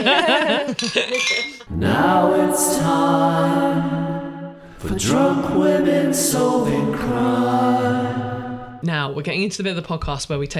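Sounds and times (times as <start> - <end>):
several people cheering and laughing: 0.0 - 1.2
speech: 0.0 - 4.2, 4.8 - 10.5
glasses clinking in a birthday toast: 0.6 - 1.7.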